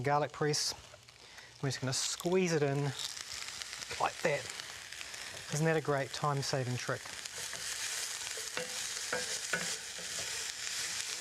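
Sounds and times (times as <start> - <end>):
speech: 0.0 - 0.9, 1.6 - 3.1, 3.9 - 4.6, 5.4 - 7.2
fresh onions and garlic sizzling in a frying pan: 0.0 - 11.1
stirring knocks in a frying pan: 8.4 - 10.4.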